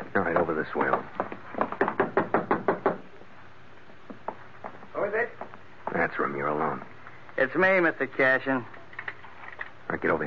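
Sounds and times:
speech: 0.2s - 1.2s, 6.1s - 8.8s, 10.0s - 10.2s
knocking on a door: 0.3s - 3.1s.

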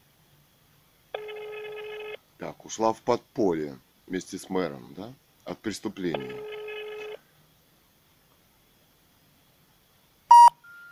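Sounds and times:
buzzy electronic telephone tone: 1.2s - 2.2s, 6.2s - 7.2s, 10.3s - 10.8s
speech: 2.4s - 6.6s
sharp telephone beep: 10.3s - 10.8s.

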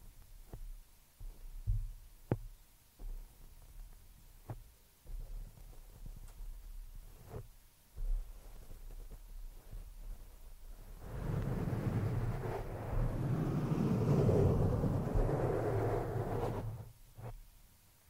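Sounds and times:
scratching and rubbing directly on a microphone: 7.0s - 17.4s.

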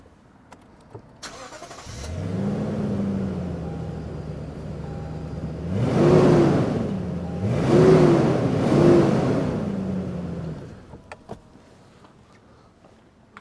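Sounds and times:
Lexus GX460 V8 engine starting, idling and revving: 1.3s - 10.9s.

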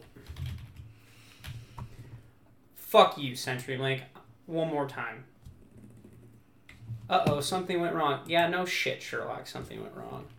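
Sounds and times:
typing on a computer keyboard: 0.2s - 0.9s
speech: 2.9s - 5.3s, 7.1s - 10.3s.

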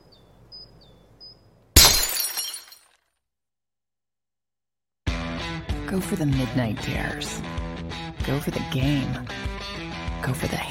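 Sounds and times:
glass bottle shattering: 1.8s - 3.0s
speech: 5.9s - 7.6s, 8.2s - 10.6s.

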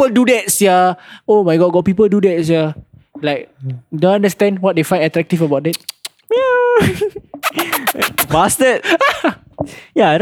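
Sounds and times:
speech: 0.0s - 10.2s
voice imitating calling a cat: 7.4s - 8.4s.

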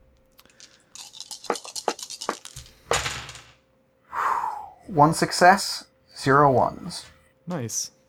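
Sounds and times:
dice clicking when shaken: 0.4s - 3.5s
speech: 4.9s - 8.0s.

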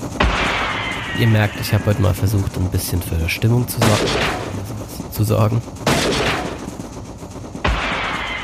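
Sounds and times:
sharp loud western-style gunshots with long reverberating tails: 0.2s - 1.2s, 3.7s - 4.7s, 5.8s - 6.8s, 7.6s - 8.4s
speech: 1.2s - 4.4s, 5.2s - 5.8s.

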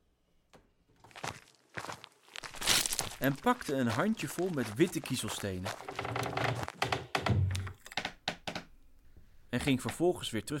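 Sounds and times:
soft footsteps of a child tiptoeing to the front door: 0.5s - 7.4s
speech: 3.2s - 6.6s, 9.6s - 10.5s.

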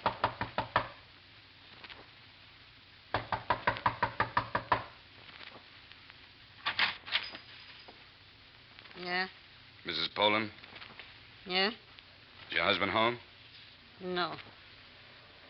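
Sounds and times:
knocking on a door: 0.0s - 1.0s, 3.1s - 5.0s
speech: 9.1s - 10.6s, 11.5s - 11.8s, 12.5s - 13.3s, 14.0s - 14.5s.

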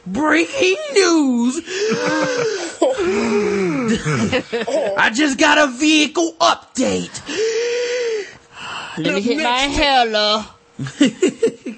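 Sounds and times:
speech: 0.0s - 7.8s, 9.0s - 11.7s
voice imitating heavy wheezy breathing into microphone: 1.6s - 5.0s, 7.2s - 8.8s
laughter: 1.7s - 3.1s, 3.9s - 5.0s, 10.8s - 11.7s.

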